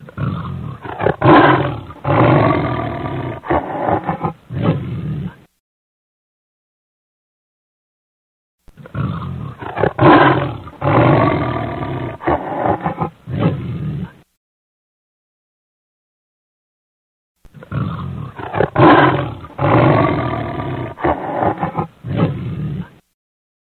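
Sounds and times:
lion giving deep throaty roars: 0:00.0 - 0:05.5, 0:08.8 - 0:14.2, 0:17.5 - 0:23.0.

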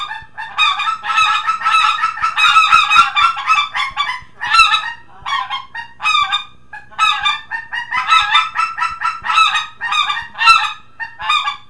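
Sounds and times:
greater white-fronted geese giving laughing yelps: 0:00.0 - 0:11.6.

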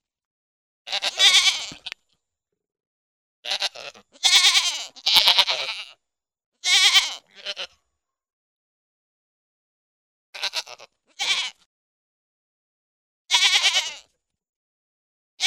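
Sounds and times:
pygmy goat bleating in quavering cries: 0:00.9 - 0:02.0, 0:03.4 - 0:06.0, 0:06.6 - 0:07.8, 0:10.4 - 0:11.7, 0:13.3 - 0:14.1.

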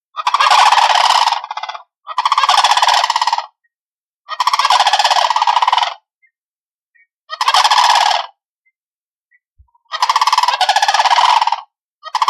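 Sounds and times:
sandhill crane calling: 0:00.1 - 0:03.6, 0:04.3 - 0:06.3, 0:06.9 - 0:08.4, 0:09.7 - 0:12.2.

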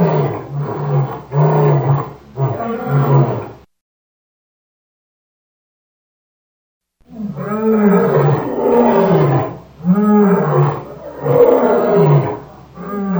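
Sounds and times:
lion roaring: 0:00.0 - 0:03.6, 0:07.1 - 0:13.1.

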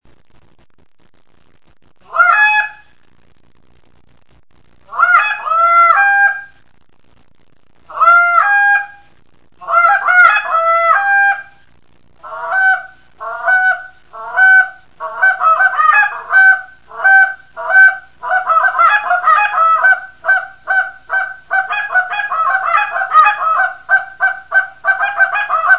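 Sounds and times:
Canada goose calling: 0:02.1 - 0:02.8, 0:04.9 - 0:06.5, 0:07.9 - 0:09.0, 0:09.6 - 0:11.6, 0:12.2 - 0:25.7.

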